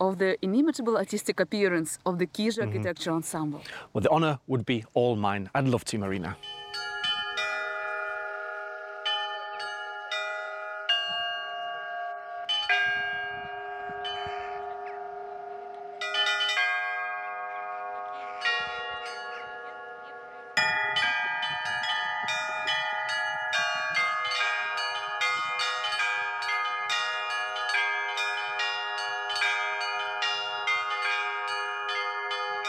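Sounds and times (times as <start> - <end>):
speech: 0.1 - 6.6
church bells pealing from a bell tower: 6.3 - 32.6.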